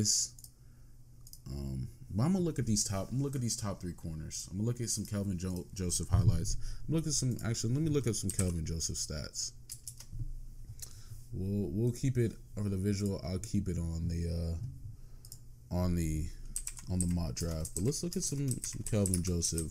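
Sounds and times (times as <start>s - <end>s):
speech: 0.0s - 0.4s, 1.5s - 9.8s, 11.3s - 14.8s, 15.7s - 19.6s
low steady hum: 0.0s - 19.6s
typing on a computer keyboard: 8.2s - 8.6s, 9.7s - 10.1s, 16.5s - 19.6s.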